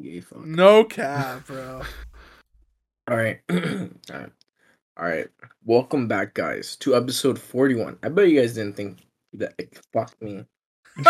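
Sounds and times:
speech: 0.0 - 2.1, 3.1 - 4.4, 5.0 - 11.0
faint breathy exhale: 1.4 - 2.4
person clearing throat close to the mic: 3.5 - 4.0.

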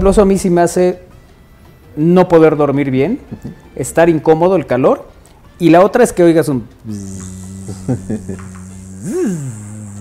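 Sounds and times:
speech: 0.0 - 1.1, 2.0 - 9.6
voice imitating a mosquito's whine: 6.8 - 9.9.

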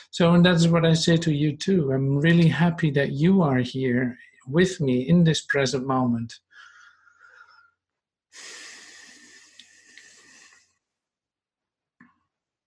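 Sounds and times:
speech: 0.0 - 6.4
slow deep breathing: 6.5 - 10.9.

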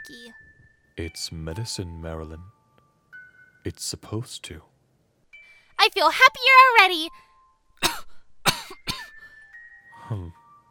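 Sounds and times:
speech: 0.0 - 2.6, 3.6 - 4.7, 5.8 - 7.3, 10.1 - 10.4
harsh coughs: 7.8 - 9.2.

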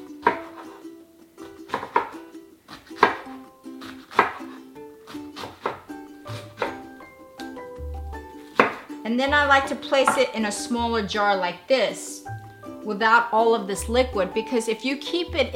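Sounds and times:
steady tonal music: 0.0 - 11.3, 12.2 - 15.5
knife slicing non-spicy vegan Korean white kimchi into bite-sized pieces: 0.2 - 0.7, 1.4 - 7.1, 8.3 - 8.9, 9.6 - 10.4
speech: 9.1 - 12.1, 12.8 - 15.5.

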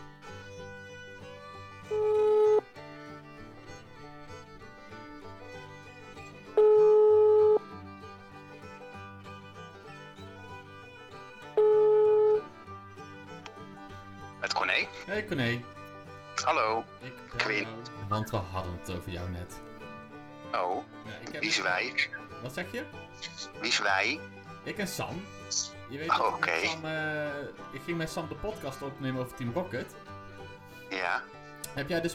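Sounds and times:
outgoing phone call ringing tone: 1.9 - 2.6, 6.6 - 7.6, 11.6 - 12.5
speech: 15.1 - 15.8, 16.4 - 19.7, 20.5 - 30.1, 31.1 - 32.1.

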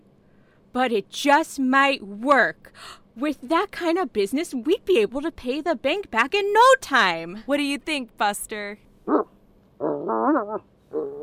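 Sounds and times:
speech: 0.7 - 9.3, 10.0 - 11.1
dog yelping, grumbling and whining: 9.9 - 11.2.

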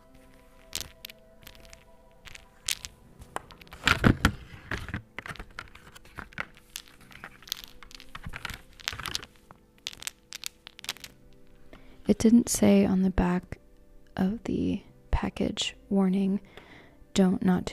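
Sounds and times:
batteries clicking and clattering as they roll together: 0.0 - 11.5
speech: 12.2 - 13.6, 14.2 - 16.6, 17.2 - 17.7.

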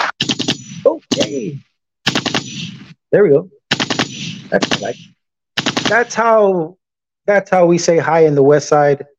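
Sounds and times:
machine-gun gunfire sound effect: 0.2 - 1.5, 2.1 - 3.0, 3.7 - 6.3
speech: 1.2 - 1.7, 3.1 - 3.6, 4.5 - 5.1, 5.9 - 9.1.

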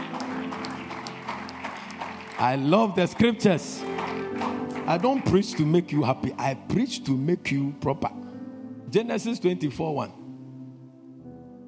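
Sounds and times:
church audience clapping during a sermon: 0.0 - 6.4
speech: 2.4 - 8.2, 8.9 - 10.2.

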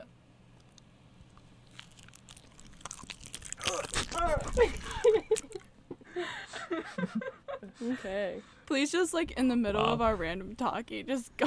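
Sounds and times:
crisp chewing: 0.5 - 5.7
crunchy bite into food: 0.6 - 5.6
speech: 7.8 - 11.4.

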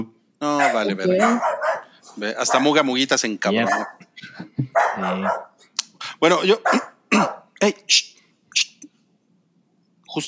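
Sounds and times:
speech: 0.0 - 1.6, 2.2 - 5.5, 6.2 - 8.7
dog barking: 0.6 - 3.0, 3.6 - 4.1, 4.7 - 5.6, 6.6 - 7.5.

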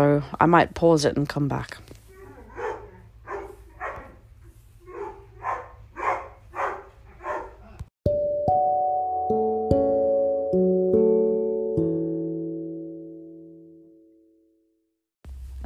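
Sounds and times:
speech: 0.0 - 1.9
dog barking at home: 2.1 - 7.8
musical interlude of sustained piano-like notes: 8.0 - 14.6.

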